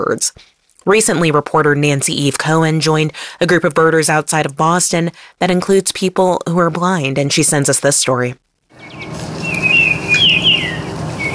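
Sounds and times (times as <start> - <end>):
speech: 0.0 - 9.3
Baltimore oriole song outside Boston in spring: 8.8 - 11.3.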